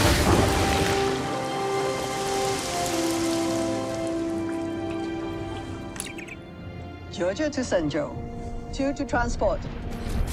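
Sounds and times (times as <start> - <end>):
big gush of water pouring: 0.0 - 6.4
speech: 7.2 - 10.2.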